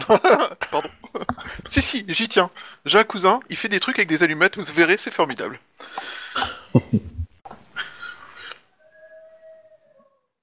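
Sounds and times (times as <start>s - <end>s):
laughter: 0.0s - 2.0s, 6.4s - 8.2s
speech: 0.1s - 1.0s, 1.7s - 7.1s
people howling like wolves outdoors in a street: 8.0s - 10.4s.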